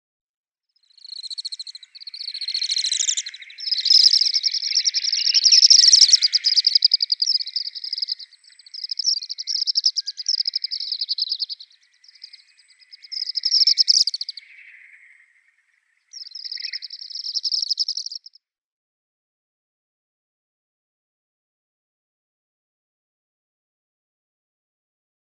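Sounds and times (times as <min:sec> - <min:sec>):
African palm swift calling: 0:01.0 - 0:14.6.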